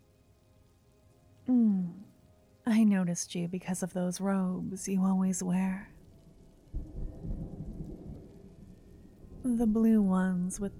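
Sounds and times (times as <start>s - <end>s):
steady rain pouring down with a low broad rumble: 0.0s - 10.7s
speech: 2.7s - 6.0s, 9.5s - 10.7s.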